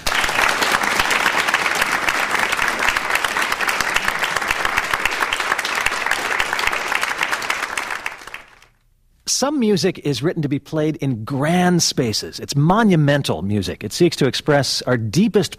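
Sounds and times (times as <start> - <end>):
audience applause: 0.0 - 8.7
speech: 9.4 - 15.5.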